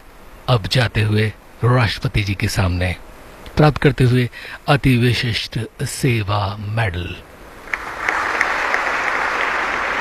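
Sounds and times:
speech: 0:00.5 - 0:03.0, 0:03.6 - 0:07.3
applause at a medal award ceremony: 0:07.6 - 0:09.9.

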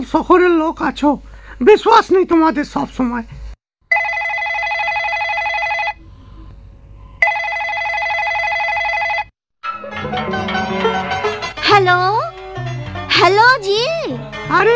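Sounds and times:
speech: 0:00.0 - 0:03.4
electronic ringtone of an incoming mobile phone call: 0:03.9 - 0:06.0, 0:07.2 - 0:09.3
music: 0:09.6 - 0:14.7.

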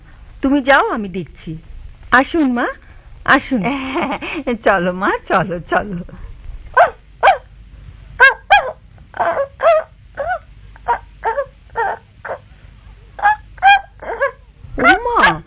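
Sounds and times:
speech: 0:00.4 - 0:06.2
small shaggy white dog giving high-pitched yelping barks: 0:06.7 - 0:07.5, 0:08.2 - 0:12.4, 0:13.2 - 0:15.4.

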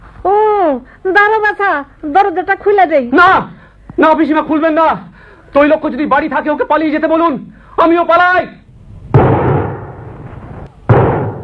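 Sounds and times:
speech: 0:00.2 - 0:08.6
gunshots: 0:09.1 - 0:10.3, 0:10.9 - 0:11.4.

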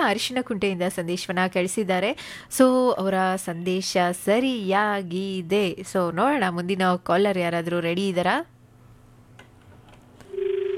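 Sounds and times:
speech: 0:00.0 - 0:08.6
telephone line tone from a dropped call: 0:10.3 - 0:10.7.

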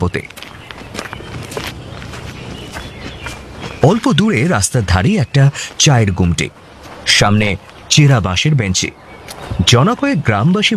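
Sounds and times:
speech: 0:00.0 - 0:00.4, 0:03.8 - 0:10.7
footsteps of a police officer and a constable walking along a village path: 0:00.0 - 0:05.0, 0:06.6 - 0:07.9
low noise: 0:00.0 - 0:10.7.

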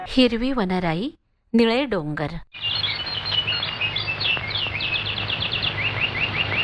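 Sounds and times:
speech: 0:00.2 - 0:02.7
birds chirping in green woodland: 0:02.5 - 0:06.6.

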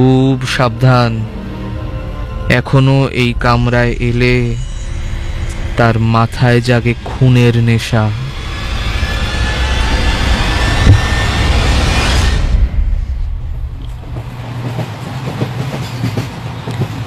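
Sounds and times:
speech: 0:00.0 - 0:01.4, 0:02.5 - 0:04.7, 0:05.8 - 0:08.2
train pulling into a station with rumble and wheel noise: 0:00.0 - 0:17.0
high squeal of a train stopping at a station: 0:01.4 - 0:13.2.

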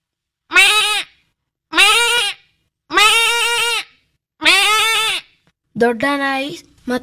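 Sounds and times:
human voice imitating a goat bleating: 0:01.7 - 0:05.3
speech: 0:05.8 - 0:07.0.

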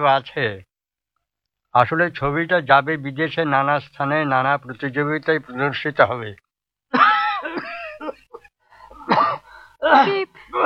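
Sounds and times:
speech: 0:00.0 - 0:00.7, 0:01.8 - 0:07.7, 0:09.8 - 0:10.6
person coughing badly in the next room: 0:07.0 - 0:10.6.

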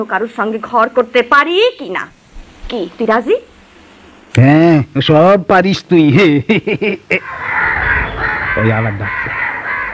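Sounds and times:
speech: 0:00.0 - 0:03.5, 0:04.4 - 0:07.4, 0:08.6 - 0:09.3
crows cawing: 0:07.2 - 0:09.9.

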